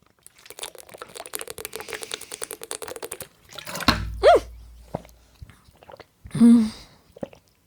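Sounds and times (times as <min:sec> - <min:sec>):
bottle knocking against the microphone: 0:03.7 - 0:05.2.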